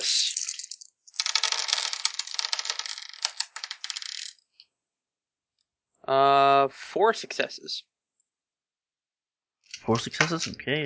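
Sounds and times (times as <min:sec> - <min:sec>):
dice rattled and rolled: 0:00.0 - 0:04.4
speech: 0:06.1 - 0:07.9, 0:09.8 - 0:10.8.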